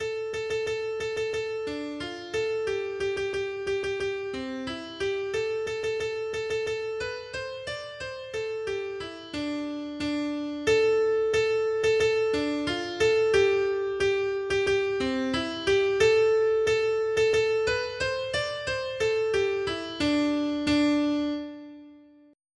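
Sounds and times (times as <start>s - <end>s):
piano ringtone: 0.0s - 22.0s.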